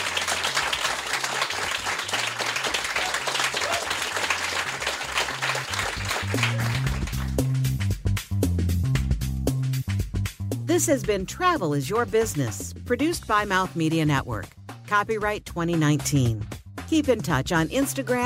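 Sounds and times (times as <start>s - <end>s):
audience applause for a panel of speakers at an event: 0.0s - 7.7s
music: 0.0s - 18.2s
speech: 10.8s - 18.2s.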